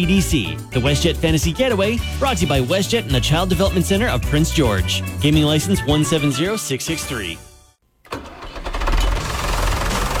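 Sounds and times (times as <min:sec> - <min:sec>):
speech: 0:00.0 - 0:07.5
heavy tractor engine cranking and starting: 0:08.0 - 0:10.1.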